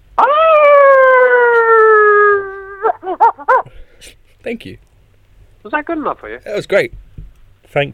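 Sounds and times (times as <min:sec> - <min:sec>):
person imitating a wolf howl: 0:00.2 - 0:03.7
person yelping: 0:00.2 - 0:03.8
speech: 0:04.0 - 0:04.9, 0:05.6 - 0:07.0, 0:07.7 - 0:07.9.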